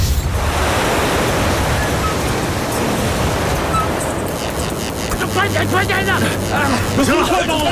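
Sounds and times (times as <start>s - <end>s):
strong typhoon wind roaring at a lighthouse: 0.0s - 5.3s
speech: 5.5s - 7.7s.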